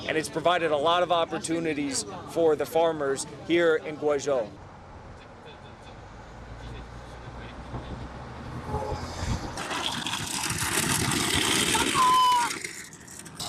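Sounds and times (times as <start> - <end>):
speech: 0.0 - 4.6
road noise from inside a moving bus: 0.0 - 13.4
engine rumble inside a moving bus: 4.6 - 13.4
brief high-pitched squeal: 8.4 - 13.4.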